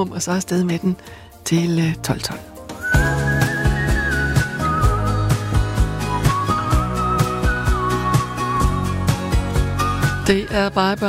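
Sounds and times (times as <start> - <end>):
speech: 0.0 - 2.5, 10.3 - 11.0
bright whistled melody in a song: 2.7 - 10.7.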